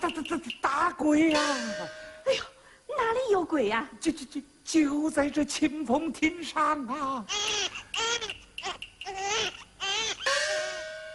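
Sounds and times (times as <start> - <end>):
speech: 0.1 - 2.5, 3.1 - 7.8
baby crying: 7.3 - 10.8.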